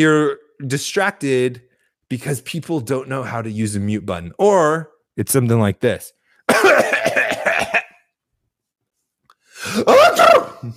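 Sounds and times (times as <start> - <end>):
speech: 0.0 - 7.1, 9.6 - 10.7
loud vocally imitated sneeze: 6.5 - 7.9, 9.7 - 10.7
person vocally imitating coughing: 6.5 - 8.0, 9.7 - 10.7.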